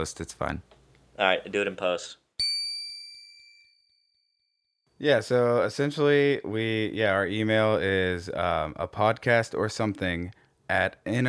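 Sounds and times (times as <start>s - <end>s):
speech: 0.0s - 2.2s, 5.0s - 11.2s
bright metallic chime: 2.4s - 3.9s.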